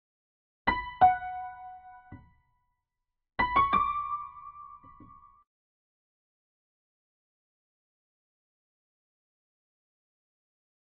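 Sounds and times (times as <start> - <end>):
B minor piano melody at 177 BPM: 0.7 - 2.4, 3.4 - 5.4.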